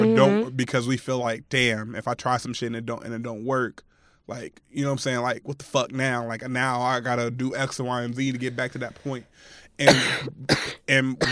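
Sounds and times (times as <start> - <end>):
speech: 0.6 - 11.3
person coughing harshly: 9.8 - 11.3.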